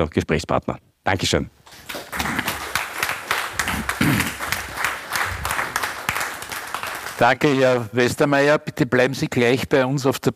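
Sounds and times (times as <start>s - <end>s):
speech: 0.0s - 2.3s, 7.2s - 10.3s
live audience applause: 1.7s - 7.8s.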